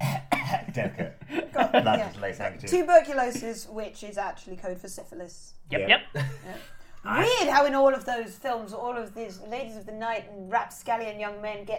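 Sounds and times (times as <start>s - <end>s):
person coughing theatrically into a handkerchief: 0.0s - 0.8s
speech: 0.8s - 1.2s, 1.8s - 11.7s.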